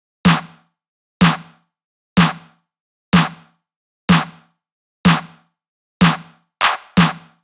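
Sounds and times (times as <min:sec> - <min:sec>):
analog drum loop with snare: 0:00.3 - 0:01.6, 0:02.2 - 0:02.6, 0:03.2 - 0:04.5, 0:05.1 - 0:07.4.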